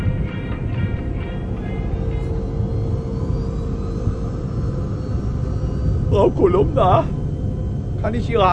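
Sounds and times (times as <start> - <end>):
airplane engines roaring during takeoff: 0.0 - 8.5
speech: 6.2 - 7.2, 8.0 - 8.5.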